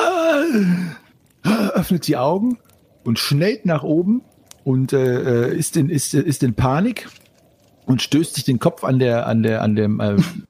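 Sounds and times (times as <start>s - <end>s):
voice acting out a dwarf's deep drawn-out gasping breath: 0.2s - 1.8s
speech: 1.8s - 7.2s, 7.9s - 10.4s.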